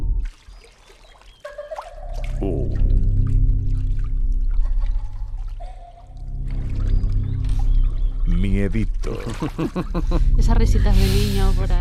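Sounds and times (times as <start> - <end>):
water splashing and sloshing in a swimming pool: 0.2 - 8.3, 8.9 - 10.1
speech: 8.7 - 11.7
laughter: 9.0 - 11.4.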